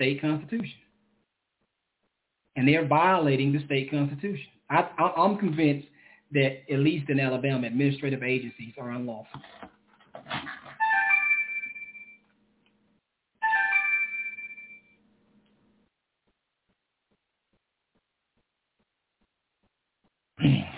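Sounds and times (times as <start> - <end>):
speech: 0.0 - 0.8, 2.6 - 10.6
phone ringtone: 10.8 - 12.2, 13.4 - 15.0.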